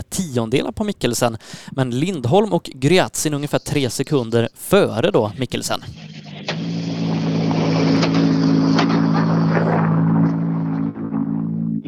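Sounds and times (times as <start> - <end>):
speech: 0.2 - 6.1
rally car engine rumbling as the car rolls in slowly: 4.8 - 11.8.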